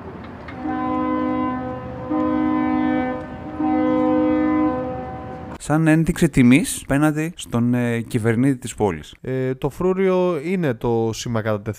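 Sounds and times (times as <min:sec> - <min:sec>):
ship horn blasts as salute: 0:00.5 - 0:05.6
speech: 0:05.6 - 0:11.7.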